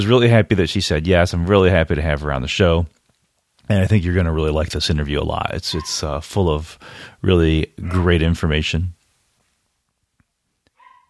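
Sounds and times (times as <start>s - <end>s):
speech: 0.0s - 3.0s, 3.7s - 9.0s
quiet background noise: 0.0s - 11.0s
neighbor's dogs barking faintly: 5.7s - 6.1s, 7.8s - 8.3s.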